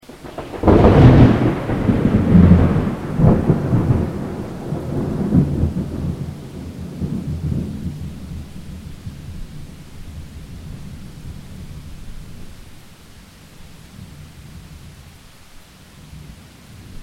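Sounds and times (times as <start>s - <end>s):
rain: 0.0s - 17.0s
thunder: 0.1s - 12.5s.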